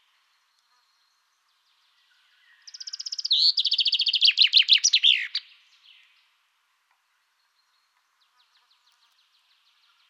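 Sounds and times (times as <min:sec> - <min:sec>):
common chaffinch Fringilla coelebs singing: 0:02.7 - 0:05.4.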